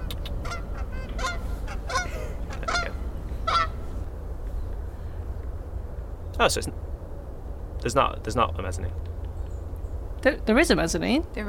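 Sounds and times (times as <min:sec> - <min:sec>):
goose honking: 0:00.0 - 0:04.0
steady low rumble: 0:00.0 - 0:11.4
speech: 0:06.4 - 0:06.9, 0:07.8 - 0:09.1, 0:10.2 - 0:11.4.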